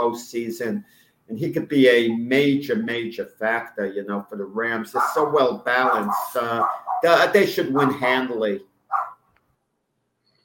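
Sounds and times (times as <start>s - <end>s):
speech: 0.0s - 8.7s
dog barking while being walked in Florida: 5.0s - 8.2s, 8.9s - 9.2s.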